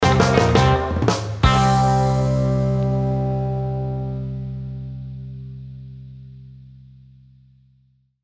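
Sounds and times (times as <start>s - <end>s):
upbeat 60s surf instrumental rock stinger: 0.0s - 6.2s.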